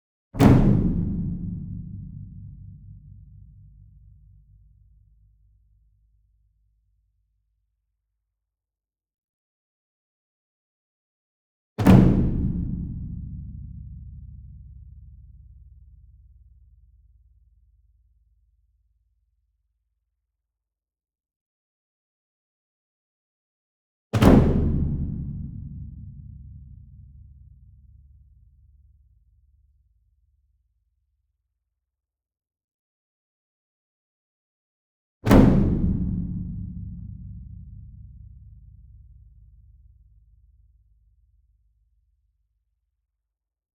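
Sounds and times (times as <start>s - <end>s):
large concert bass drum medium flam: 0.4s - 4.0s, 11.8s - 14.9s, 24.2s - 27.5s, 35.3s - 39.1s.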